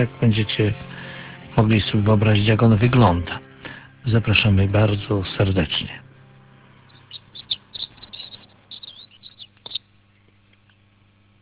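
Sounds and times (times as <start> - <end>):
speech: 0.0 - 0.9, 1.6 - 6.0
steady low hum: 0.0 - 11.4
birds singing in spring: 6.8 - 10.4.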